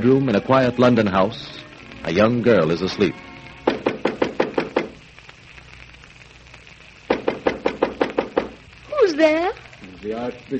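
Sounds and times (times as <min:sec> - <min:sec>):
speech: 0:00.0 - 0:03.3, 0:10.0 - 0:10.5
firm rapid knocking on a wooden bedroom door in a London house: 0:03.6 - 0:05.0, 0:07.1 - 0:08.6.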